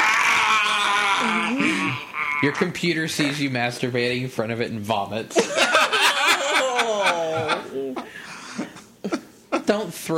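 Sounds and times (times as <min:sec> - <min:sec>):
voice imitating a dying robot's scream: 0:00.0 - 0:03.5
speech: 0:02.4 - 0:05.6, 0:09.7 - 0:10.1
laughter: 0:05.3 - 0:09.8.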